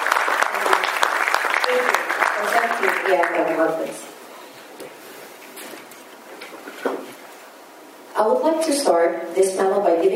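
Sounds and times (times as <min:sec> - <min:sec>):
audience applause from a sizable crowd: 0:00.0 - 0:04.0
speech: 0:03.1 - 0:04.2, 0:08.2 - 0:10.1.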